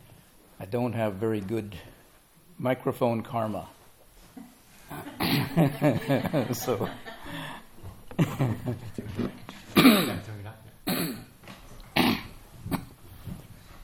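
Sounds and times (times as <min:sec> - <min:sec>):
speech: 0:00.6 - 0:02.0, 0:02.6 - 0:03.8, 0:04.4 - 0:07.1, 0:08.3 - 0:10.3
person coughing: 0:04.9 - 0:05.6, 0:09.8 - 0:10.2, 0:10.9 - 0:11.3, 0:12.0 - 0:13.0
laughter: 0:04.9 - 0:09.5
gruff throat clearing: 0:09.8 - 0:10.2, 0:10.9 - 0:11.3, 0:12.0 - 0:13.0.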